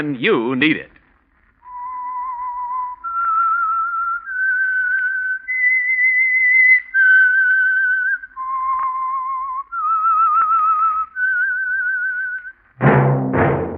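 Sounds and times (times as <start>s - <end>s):
speech: 0.0s - 1.0s
lone whistler whistling a slow radio signature tune: 1.6s - 12.6s.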